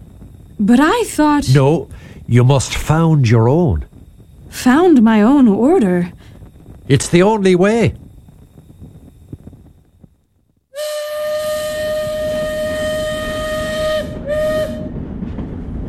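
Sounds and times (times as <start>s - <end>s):
moving train rumbling and clattering: 0.0s - 10.2s, 10.8s - 15.8s
speech: 0.6s - 3.9s, 4.5s - 6.2s, 6.9s - 8.0s
train whistle: 10.7s - 15.1s.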